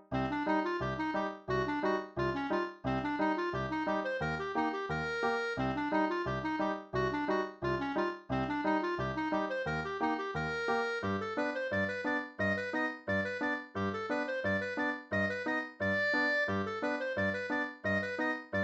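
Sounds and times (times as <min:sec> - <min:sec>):
clarinet solo: 0:00.2 - 0:18.6.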